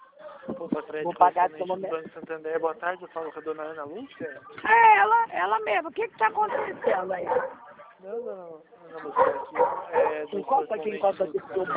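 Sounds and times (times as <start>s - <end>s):
speech: 0.6s - 11.7s
dog barking behind a house gate: 6.4s - 7.9s, 9.1s - 10.3s.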